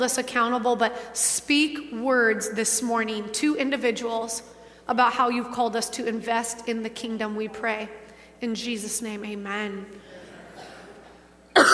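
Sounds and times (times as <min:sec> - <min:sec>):
speech: 0:00.0 - 0:10.2
single loud cough: 0:10.5 - 0:11.7.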